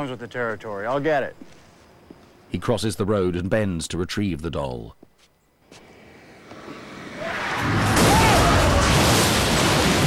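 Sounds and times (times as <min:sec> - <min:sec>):
speech: 0:00.0 - 0:01.6, 0:02.5 - 0:05.1
car bursting into flames with roaring rumble and crackling: 0:07.2 - 0:10.0
truck smashing into a car: 0:07.6 - 0:10.0.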